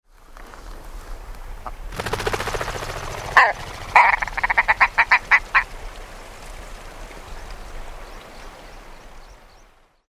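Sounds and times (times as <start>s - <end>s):
Willow Ptarmigan Lagopus lagopus scotica calling: 1.6s - 9.2s.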